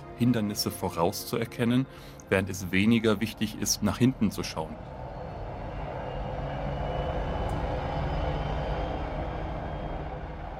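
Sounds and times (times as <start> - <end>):
speech: 0.2 - 5.0
helicopter droning overhead with deep engine rumble: 3.1 - 10.5.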